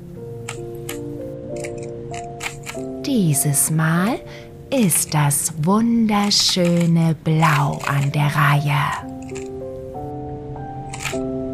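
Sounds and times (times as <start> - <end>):
soft steady musical drone: 0.0 - 11.5
Rubik's cube twisted by hand clicking: 1.6 - 2.9, 6.2 - 8.3, 9.1 - 9.6, 10.9 - 11.2
speech: 3.1 - 9.5.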